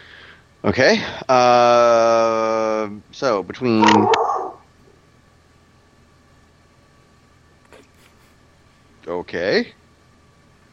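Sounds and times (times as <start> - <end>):
quiet hum: 0.0 - 10.7
speech: 0.6 - 4.2, 9.3 - 9.8
dog barking: 3.8 - 4.6.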